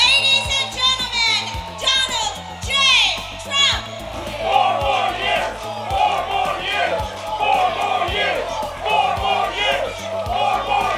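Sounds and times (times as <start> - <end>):
crowd cheering and shouting: 0.0 - 10.9
large crowd chanting a slogan in a big hall at a convention: 3.2 - 10.9.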